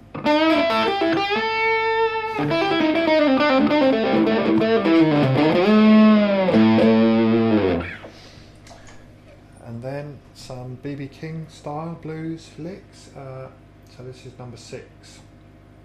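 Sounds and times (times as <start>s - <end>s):
electric guitar through heavy distortion effect: 0.0s - 8.2s
speech: 11.1s - 15.3s.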